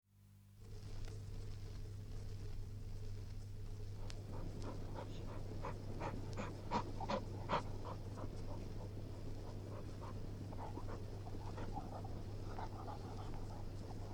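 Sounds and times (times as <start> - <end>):
background hiss: 0.1 - 14.1
Springer spaniel panting: 3.9 - 14.1.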